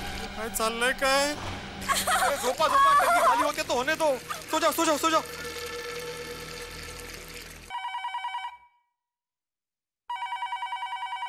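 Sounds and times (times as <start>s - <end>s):
speech: 0.4s - 5.4s
laughter: 1.9s - 4.6s
telephone ringing: 7.7s - 8.8s, 10.1s - 11.2s.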